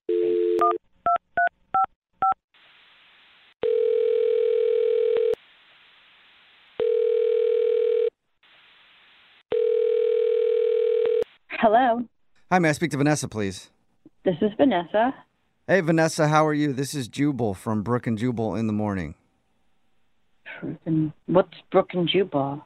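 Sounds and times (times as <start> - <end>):
phone ringing tone over a line: 0.1 - 1.2, 3.6 - 5.4, 6.8 - 8.2, 9.5 - 11.2
speech: 11.7 - 19.2, 20.6 - 22.6.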